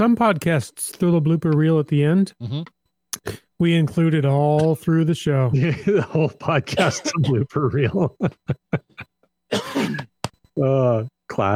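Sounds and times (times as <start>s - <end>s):
speech: 0.0s - 11.5s
harsh rasping coughing: 6.7s - 7.4s, 8.9s - 10.1s.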